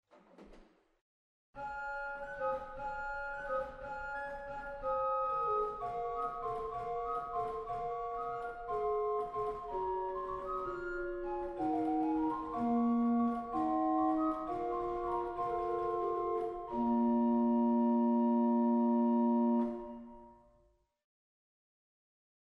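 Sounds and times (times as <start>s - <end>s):
Gedackt Quint 3 pipe organ stop: 2.4s - 20.2s.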